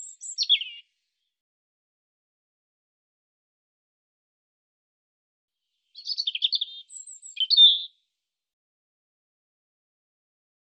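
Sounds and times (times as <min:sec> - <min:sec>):
European robin singing: 0:00.0 - 0:00.8, 0:05.8 - 0:08.0.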